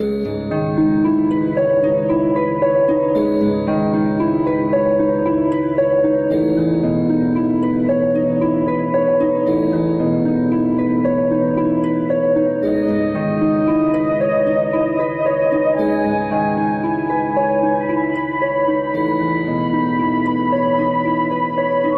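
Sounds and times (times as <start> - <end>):
flute in a sad loop: 0.0 - 21.9
strings in a sad loop: 0.0 - 21.9.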